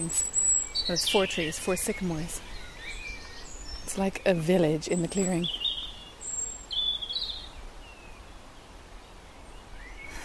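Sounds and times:
speech: 0.0 - 2.5, 3.9 - 5.6
sharp high bird chirps and calls: 0.0 - 4.2, 4.9 - 8.0.

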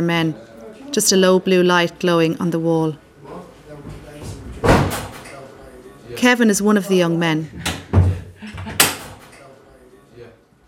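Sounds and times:
speech: 0.0 - 3.0, 6.1 - 7.7
heavy metal holding cell door slamming shut: 4.6 - 5.2.

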